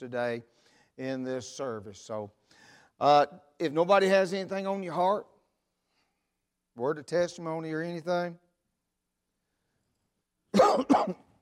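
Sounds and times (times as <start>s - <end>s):
speech: 0.0s - 2.4s, 3.0s - 5.3s, 6.8s - 8.4s, 10.7s - 11.2s
dry cough left over from allergies: 10.6s - 11.3s.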